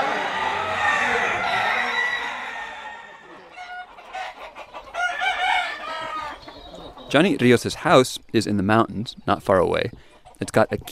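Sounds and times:
fighting roosters crowing: 0:00.0 - 0:07.4
fighting roosters clucking: 0:00.0 - 0:10.9
speech: 0:07.1 - 0:10.9.

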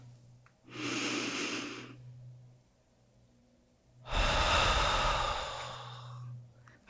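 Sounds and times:
long loud exhale through mouth: 0:00.7 - 0:02.0, 0:04.1 - 0:06.3
slow breath in through nose: 0:00.7 - 0:02.0, 0:04.1 - 0:06.2.

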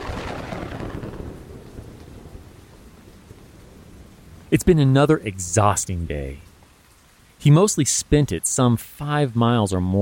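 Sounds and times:
low rolling rumble of thunder: 0:00.0 - 0:04.5
steady hissing rainfall: 0:00.0 - 0:09.9
speech: 0:04.5 - 0:06.5, 0:07.4 - 0:09.9.

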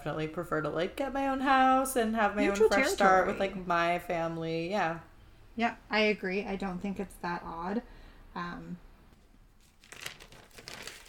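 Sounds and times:
speech: 0:00.0 - 0:08.8
paper note pages being flipped and handled: 0:09.2 - 0:11.0.

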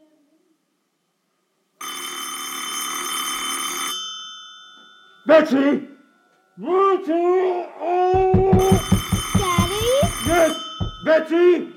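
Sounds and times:
electric telephone bell ringing: 0:01.8 - 0:05.3, 0:08.5 - 0:11.1
speech: 0:05.2 - 0:05.9, 0:06.6 - 0:08.4, 0:11.0 - 0:11.7.

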